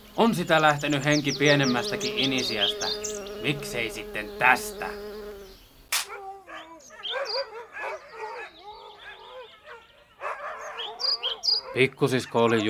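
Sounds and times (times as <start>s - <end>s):
speech: 0.2s - 5.1s, 11.8s - 12.6s
dogs barking and yelping: 6.0s - 12.6s.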